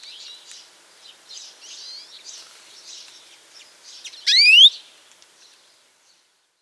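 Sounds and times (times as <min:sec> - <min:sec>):
European greenfinch Chloris chloris buzzy upslurred call: 0:04.3 - 0:04.7
soft high twittering: 0:04.3 - 0:04.7.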